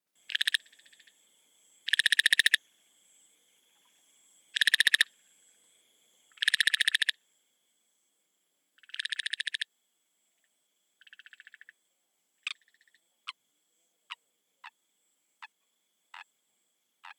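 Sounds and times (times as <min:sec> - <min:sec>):
Hylarana leptoglossa calling: 0:00.2 - 0:01.2, 0:01.8 - 0:02.7, 0:04.5 - 0:05.2, 0:06.3 - 0:07.2, 0:08.8 - 0:09.7, 0:11.0 - 0:11.8, 0:12.4 - 0:13.4, 0:15.4 - 0:16.3, 0:17.0 - 0:17.1.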